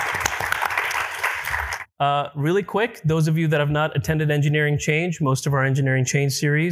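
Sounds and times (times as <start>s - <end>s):
mid-sized audience applauding at a university event: 0.0s - 1.9s
speech: 2.0s - 6.7s.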